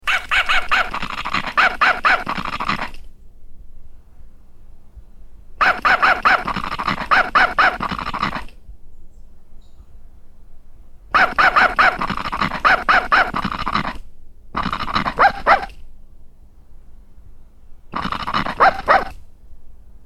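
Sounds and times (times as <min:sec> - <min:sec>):
toy dog barking: 0:00.0 - 0:03.0, 0:05.6 - 0:08.5, 0:11.1 - 0:14.0, 0:14.6 - 0:15.8, 0:17.9 - 0:19.2.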